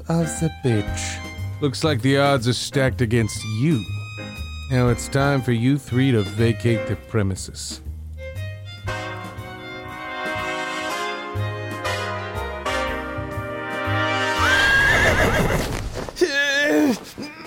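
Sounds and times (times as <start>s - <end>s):
music: 0.0s - 15.6s
speech: 0.1s - 7.9s
horse neighing: 14.3s - 15.7s.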